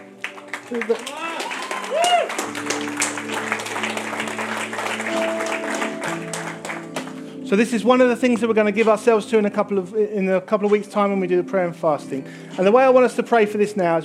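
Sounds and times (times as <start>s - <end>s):
room full of people clapping: 0.0s - 7.5s
speech: 0.7s - 1.3s, 1.9s - 5.7s, 7.5s - 14.0s.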